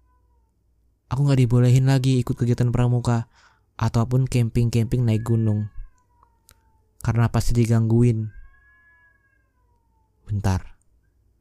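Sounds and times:
cat fighting with another cat yowling in front of a house: 0.0s - 0.6s, 4.6s - 7.1s, 8.1s - 10.3s
speech: 1.1s - 5.8s, 7.0s - 8.4s, 10.3s - 10.7s.

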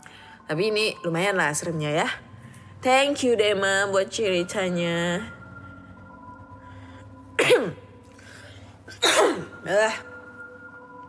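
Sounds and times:
faint steady hum: 0.0s - 11.0s
speech: 0.5s - 5.4s, 9.0s - 10.1s
person coughing: 7.4s - 7.9s, 8.9s - 10.0s.

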